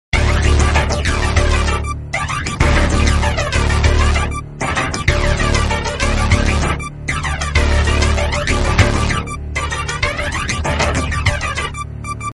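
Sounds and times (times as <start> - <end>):
vehicle music: 0.1 - 12.3.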